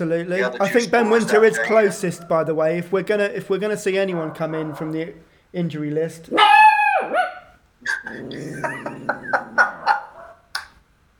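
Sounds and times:
speech: 0:00.0 - 0:09.4
laughter: 0:00.4 - 0:02.2, 0:07.9 - 0:10.2
puppy yelping, barking and yipping: 0:06.3 - 0:07.6, 0:09.3 - 0:10.5.

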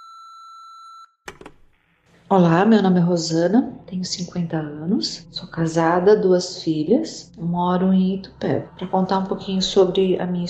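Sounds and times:
answering machine beep before a message: 0:00.0 - 0:01.1
speech: 0:02.3 - 0:10.4.

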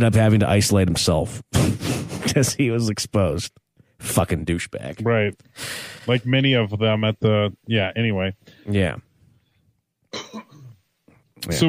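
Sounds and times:
speech: 0:00.0 - 0:09.1, 0:11.4 - 0:11.6
person coughing: 0:10.1 - 0:10.8.

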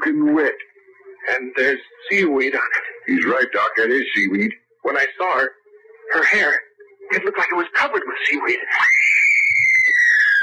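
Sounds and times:
speech: 0:01.5 - 0:09.0
loud sustained high-pitched scream: 0:08.7 - 0:10.4.

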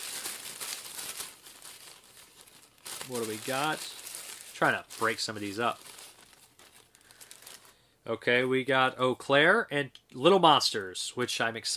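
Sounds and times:
paper slips being drawn out of a bag: 0:00.0 - 0:07.8
speech: 0:03.1 - 0:04.0, 0:04.6 - 0:05.9, 0:08.0 - 0:11.7.

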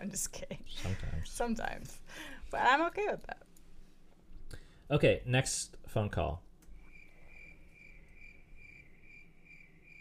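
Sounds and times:
speech: 0:00.0 - 0:03.4, 0:04.9 - 0:06.5
crickets chirping: 0:06.9 - 0:10.0.

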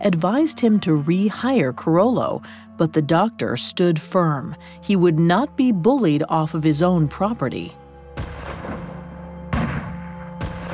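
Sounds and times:
speech: 0:00.0 - 0:08.3
gunshots: 0:08.4 - 0:10.7.

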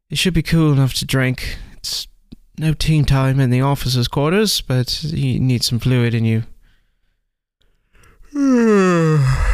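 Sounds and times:
speech: 0:00.1 - 0:06.5, 0:08.3 - 0:09.4
man yawning: 0:08.2 - 0:09.5.

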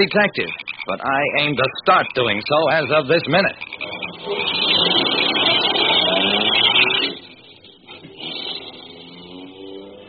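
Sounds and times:
speech: 0:00.0 - 0:04.4
car engine revving up loudly: 0:03.7 - 0:10.0.

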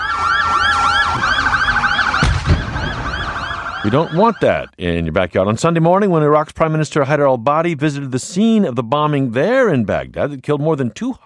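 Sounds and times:
emergency sirens wailing after a suicide car bombing outside a mosque: 0:00.0 - 0:04.7
speech: 0:03.8 - 0:11.2.

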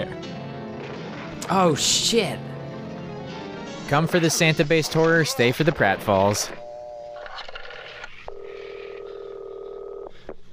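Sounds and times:
speech: 0:01.5 - 0:02.5, 0:03.9 - 0:06.6
buzzing phone tone: 0:06.3 - 0:10.3
rotary phone dialing: 0:07.1 - 0:09.1.

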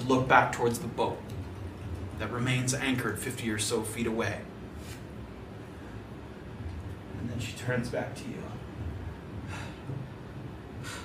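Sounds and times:
steady noise: 0:00.0 - 0:11.0
speech: 0:00.1 - 0:01.3, 0:02.2 - 0:04.5, 0:07.4 - 0:08.6
woman breathing laboriously while rising to her feet: 0:09.3 - 0:11.0.

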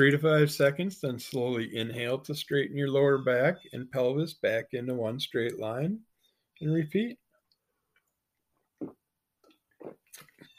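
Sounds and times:
speech: 0:00.0 - 0:07.2
person sipping and swallowing water: 0:07.5 - 0:10.5.

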